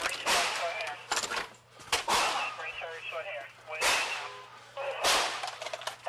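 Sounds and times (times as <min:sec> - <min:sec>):
gunshots during a police response captured on a body camera: 0:00.1 - 0:00.9, 0:01.9 - 0:02.7, 0:03.7 - 0:06.0.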